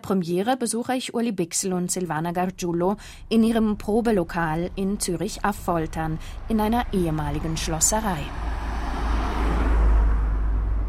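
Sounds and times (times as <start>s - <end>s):
speech: 0.0s - 8.6s
traffic on a busy street through open windows: 2.4s - 10.8s.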